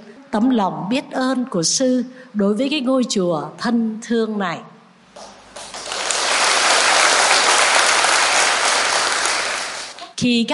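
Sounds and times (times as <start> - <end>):
speech: 0.3 - 5.3, 10.2 - 10.5
group of young people clapping at a temple summer retreat: 5.2 - 10.2.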